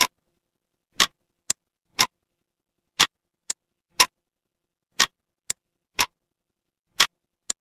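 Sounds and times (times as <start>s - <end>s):
mechanical clock ticking: 0.0s - 0.2s, 0.9s - 2.2s, 2.9s - 4.3s, 4.9s - 6.2s, 6.9s - 7.5s.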